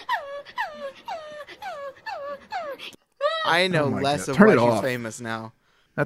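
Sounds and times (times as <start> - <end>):
dog whimpering: 0.0 - 4.8
speech: 3.4 - 6.0.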